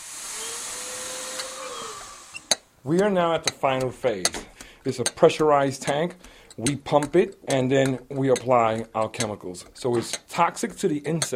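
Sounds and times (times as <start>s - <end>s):
vacuum cleaner sucking up bed bugs: 0.0s - 2.6s
speech: 2.8s - 11.3s.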